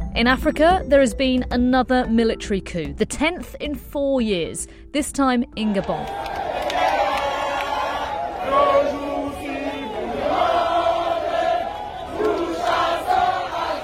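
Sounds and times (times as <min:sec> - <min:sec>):
speech: 0:00.2 - 0:06.4
large outdoor crowd cheering and chanting in the street: 0:05.7 - 0:13.8
rhythmic group singing: 0:08.4 - 0:13.8.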